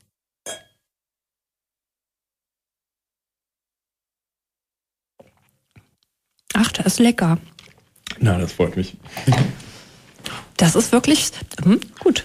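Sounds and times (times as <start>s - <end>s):
two wine glasses clinking in a toast: 0.5s - 0.8s
speech: 6.6s - 7.5s, 8.2s - 9.6s, 10.6s - 12.2s.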